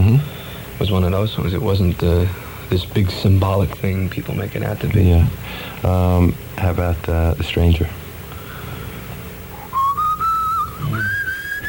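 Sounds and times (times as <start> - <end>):
speech: 0.8 - 8.0
person whistling a melody opening a song: 9.6 - 11.6.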